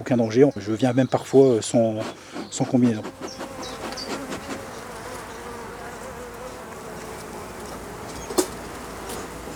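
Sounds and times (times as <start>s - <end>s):
speech: 0.0s - 3.8s
many honeybees swarming around a hive: 2.1s - 9.5s.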